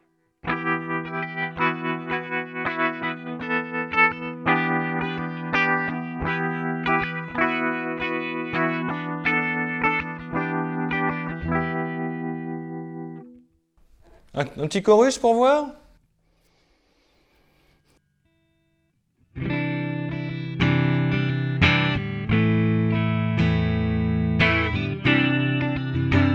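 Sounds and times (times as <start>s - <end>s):
clean electric guitar chords through spring reverb and tremolo: 0.4s - 13.4s, 19.3s - 26.3s
speech: 14.4s - 15.8s.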